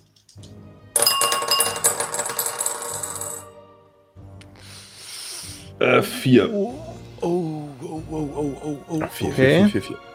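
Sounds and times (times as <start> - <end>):
dice rattling and clattering across a hard surface: 1.0 - 3.5
speech: 5.8 - 7.4, 8.1 - 10.1.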